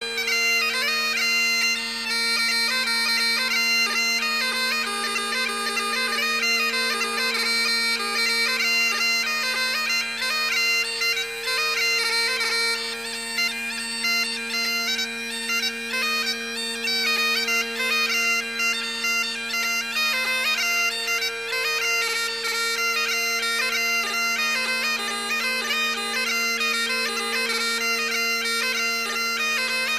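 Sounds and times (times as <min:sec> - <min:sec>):
warpipes bagpipes playing: 0:00.0 - 0:29.9.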